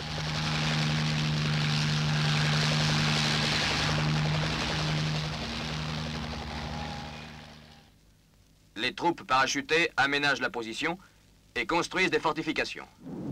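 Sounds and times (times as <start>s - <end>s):
Sikorsky helicopter engine and rotors droning: 0.0s - 7.9s
speech: 8.8s - 13.2s.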